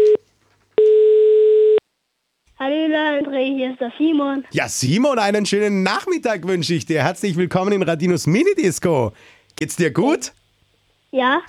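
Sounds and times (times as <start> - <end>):
telephone ringback tone while calling someone: 0.0 - 0.2, 0.8 - 1.8
speech: 2.9 - 10.4, 11.1 - 11.4.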